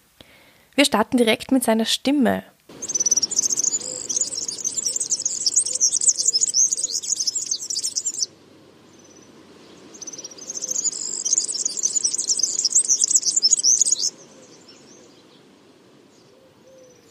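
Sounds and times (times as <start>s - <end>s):
speech: 0.8s - 2.5s
European serin male singing: 2.7s - 8.3s, 8.9s - 15.4s.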